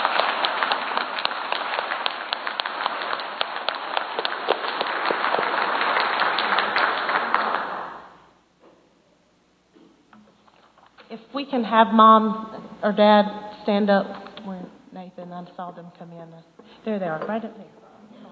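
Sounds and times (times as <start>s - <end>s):
audience applauding for graduating boys: 0.0s - 8.3s
speech: 11.5s - 14.2s, 15.6s - 17.7s.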